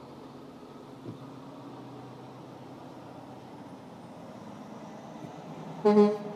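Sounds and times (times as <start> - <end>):
road rumble of traffic: 0.0 - 6.3
big truck horn honking while changing lanes: 5.8 - 6.3.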